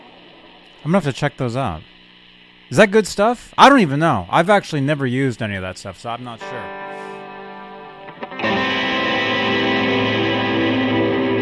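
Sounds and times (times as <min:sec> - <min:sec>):
speech: 0:00.8 - 0:01.9, 0:02.7 - 0:06.8
distorted guitar through a heavy delay effect: 0:06.4 - 0:11.3.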